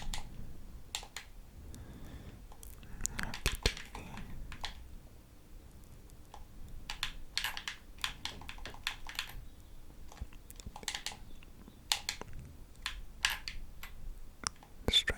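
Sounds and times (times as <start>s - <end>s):
faint low hum: 0.0s - 15.1s
plastic controller buttons clicking: 0.9s - 1.3s, 2.5s - 4.8s, 6.2s - 13.6s.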